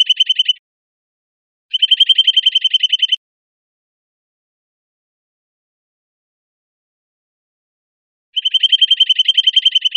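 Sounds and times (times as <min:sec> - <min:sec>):
bird trill of rapid high chips in Costa Rica: 0:00.0 - 0:00.6, 0:01.7 - 0:03.2, 0:08.4 - 0:09.9.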